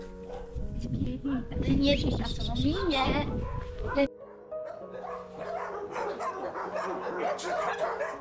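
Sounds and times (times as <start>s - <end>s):
many dogs and puppies barking and yipping: 0.2s - 0.6s, 2.6s - 8.1s
speech: 0.8s - 4.1s.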